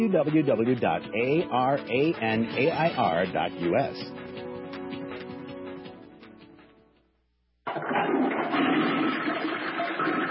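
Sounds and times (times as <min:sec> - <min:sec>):
speech: 0:00.0 - 0:04.2
toilet flushing: 0:07.7 - 0:10.3.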